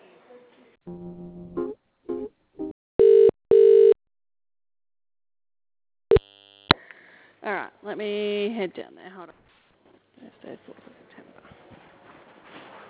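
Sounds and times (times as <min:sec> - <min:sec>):
loud steady electronic telephone line tones during call transfer: 0:03.0 - 0:04.0
telephone line clicks and blips during call transfer: 0:03.0 - 0:04.0, 0:06.1 - 0:06.8
speech: 0:07.9 - 0:09.4, 0:10.4 - 0:11.2.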